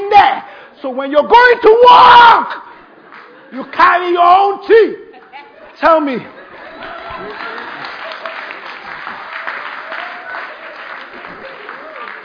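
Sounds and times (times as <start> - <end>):
speech: 0.8 - 2.6, 3.5 - 5.0, 5.8 - 6.4
laughter: 3.0 - 3.8, 5.0 - 9.5
audience clapping: 3.1 - 3.4, 6.4 - 12.2.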